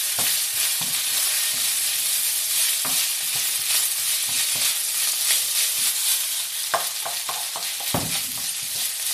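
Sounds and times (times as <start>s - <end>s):
oil sizzling as food fries in a pan: 0.0s - 9.1s.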